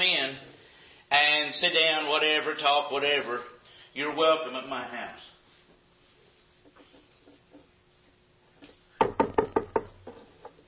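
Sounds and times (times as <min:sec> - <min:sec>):
speech: 0:01.6 - 0:05.4
firm knocking on a door: 0:09.0 - 0:10.2.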